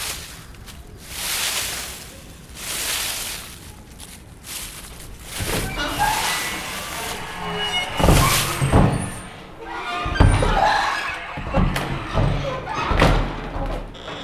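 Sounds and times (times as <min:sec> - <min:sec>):
door creaking and thudding shut: 0:04.8 - 0:14.2.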